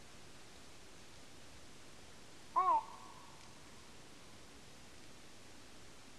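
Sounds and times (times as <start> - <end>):
great bittern nocturnal flight call: 2.6 - 3.4.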